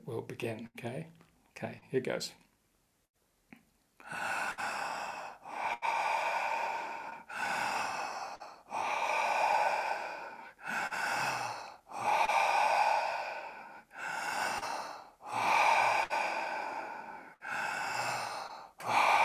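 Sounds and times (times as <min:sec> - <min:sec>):
speech: 0:00.1 - 0:02.4
deep forceful breaths from a breathing exercise: 0:04.0 - 0:19.2.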